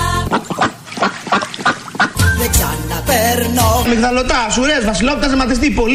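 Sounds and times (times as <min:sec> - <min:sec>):
duck quacking nasally and raspily: 0:00.0 - 0:02.4
speech: 0:03.4 - 0:05.9.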